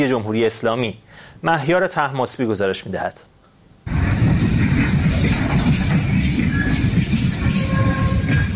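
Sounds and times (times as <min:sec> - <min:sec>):
speech: 0:00.0 - 0:04.0
freight train arriving in Xi'an rumbling with heavy low-frequency clatter: 0:03.9 - 0:08.5.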